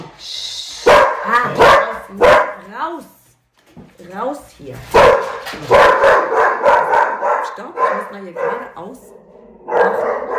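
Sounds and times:
dog barking: 0.8 - 2.7, 4.9 - 10.3
speech: 4.1 - 6.3, 7.6 - 10.3.

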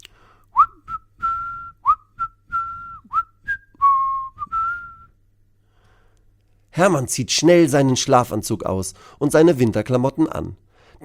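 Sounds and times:
man whistling a cheerful tune: 0.5 - 5.2
speech: 6.8 - 11.0.

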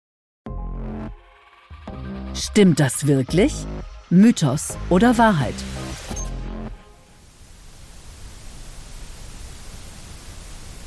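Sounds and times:
musical tones: 0.6 - 7.3
speech: 2.4 - 5.8
steady hiss of white noise: 6.9 - 10.8.

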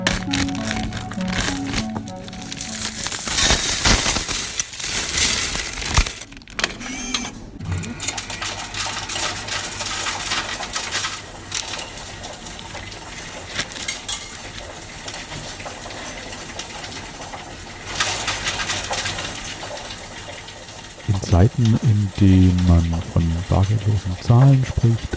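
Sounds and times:
coins clattering through a coin-counting machine: 0.1 - 6.3, 7.9 - 21.1
speech: 21.6 - 25.1.

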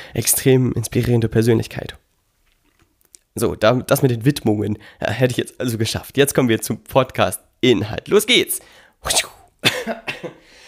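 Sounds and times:
speech: 0.1 - 2.0, 3.4 - 10.4
person coughing: 9.1 - 10.4.

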